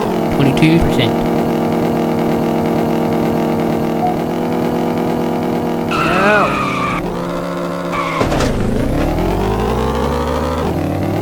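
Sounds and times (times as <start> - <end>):
video game car engine running: 0.0 - 11.2
speech: 0.6 - 1.3.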